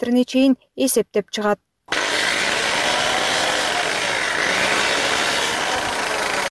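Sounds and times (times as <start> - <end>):
speech: 0.0 - 1.7
homemade cutting machine splitting an ibex horn: 1.9 - 6.5.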